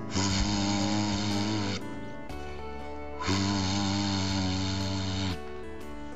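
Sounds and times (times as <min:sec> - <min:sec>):
long loud steam whistle blasts: 0:00.1 - 0:02.0, 0:02.9 - 0:05.6.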